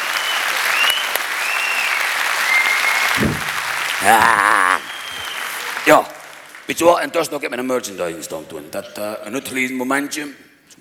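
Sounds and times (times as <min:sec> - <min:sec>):
crowd clapping: 0:00.0 - 0:07.0
loud cheer or shout: 0:02.5 - 0:05.2
speech: 0:04.0 - 0:04.8, 0:05.9 - 0:06.1, 0:06.7 - 0:10.7.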